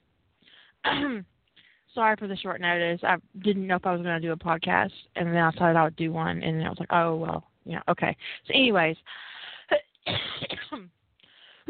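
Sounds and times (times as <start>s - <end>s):
person clearing throat: 0.8s - 1.3s, 9.7s - 10.9s
person with a lingering cough coughing: 0.8s - 1.3s, 9.7s - 10.9s
speech: 0.8s - 1.3s, 2.0s - 11.0s.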